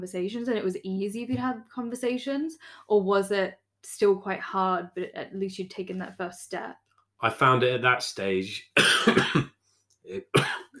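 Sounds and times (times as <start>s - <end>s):
speech: 0.0s - 9.5s, 10.1s - 10.7s
person coughing: 8.8s - 9.5s, 10.1s - 10.7s.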